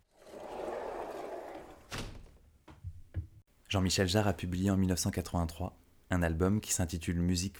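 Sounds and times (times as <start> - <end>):
automatic sliding doors gliding open: 0.0 - 2.3
automatic sliding doors shutting: 1.6 - 3.4
speech: 3.7 - 7.5.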